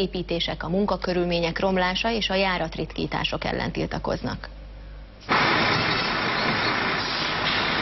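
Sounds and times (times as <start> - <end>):
speech: 0.0 - 4.6
city bus engine rumbling in a bus garage: 5.2 - 7.8.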